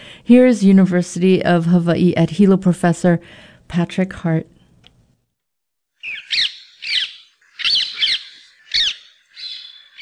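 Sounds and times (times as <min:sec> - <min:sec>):
speech: 0:00.3 - 0:04.5
rose-ringed parakeet squawking: 0:06.0 - 0:10.0.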